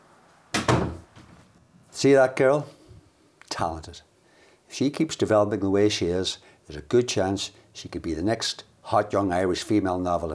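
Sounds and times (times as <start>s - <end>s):
door closing with latch: 0.5s - 1.5s
speech: 2.0s - 2.8s, 3.6s - 4.1s, 4.7s - 10.3s.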